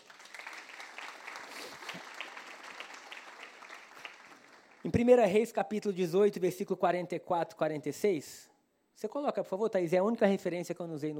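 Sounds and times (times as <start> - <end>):
audience applauding: 0.0 - 5.3
speech: 4.8 - 11.1.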